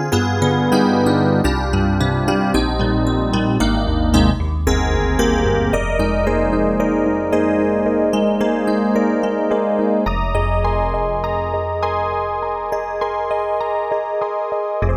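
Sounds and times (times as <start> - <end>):
FM hard and bright electric piano solo on SD-90: 0.1 - 14.9.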